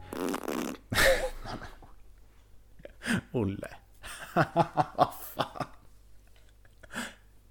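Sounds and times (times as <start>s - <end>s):
buzzy mouth-made fart noise, a wet lip raspberry: 0.0s - 1.0s
speech: 3.4s - 3.8s, 4.4s - 5.1s.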